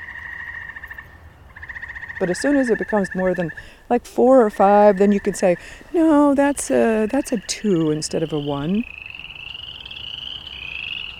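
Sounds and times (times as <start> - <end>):
frogs or toads calling in a full chorus with a buzzing trill: 0.0 - 11.1
speech: 2.2 - 9.0.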